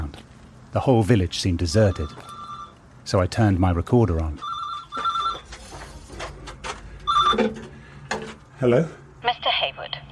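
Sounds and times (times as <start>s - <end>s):
speech: 0.7s - 2.4s, 3.1s - 4.5s, 7.3s - 7.6s, 8.6s - 9.0s
red telephone box phone ringing: 1.7s - 2.8s, 4.4s - 5.6s, 7.0s - 7.7s.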